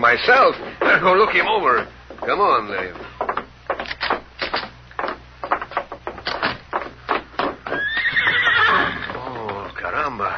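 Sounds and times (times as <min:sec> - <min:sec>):
horse hooves clopping: 0:00.0 - 0:10.3
speech: 0:00.1 - 0:03.2
horse neighing: 0:07.7 - 0:09.8.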